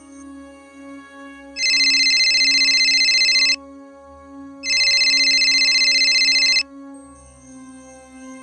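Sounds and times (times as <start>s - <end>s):
telephone bell ringing for a police call to a home: 1.6s - 3.6s, 4.6s - 6.6s.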